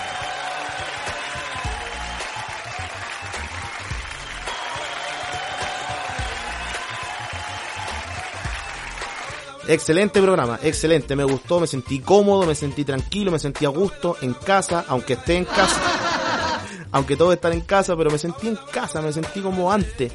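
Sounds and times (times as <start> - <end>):
crowd applause: 0.0 - 9.5, 15.5 - 16.8
speech: 9.7 - 16.0, 16.9 - 20.1
laughter: 15.4 - 16.8.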